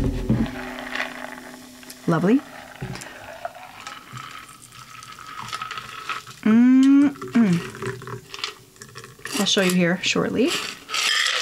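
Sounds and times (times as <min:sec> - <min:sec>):
liquid poured through a strainer into a glass: 0:00.4 - 0:06.4, 0:07.0 - 0:09.3
speech: 0:02.1 - 0:02.9, 0:09.5 - 0:10.8.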